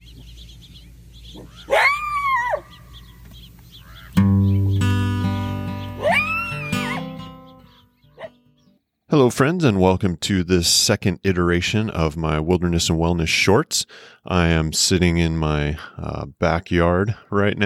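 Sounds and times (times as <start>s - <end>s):
pair of coyotes howling: 1.4s - 3.0s, 5.8s - 7.3s
sustained musical notes: 4.2s - 7.8s
speech: 9.2s - 17.6s.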